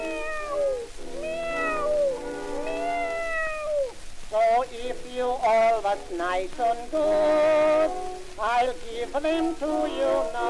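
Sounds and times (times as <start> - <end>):
cat meowing: 0.0 - 4.0
speech: 4.8 - 10.4.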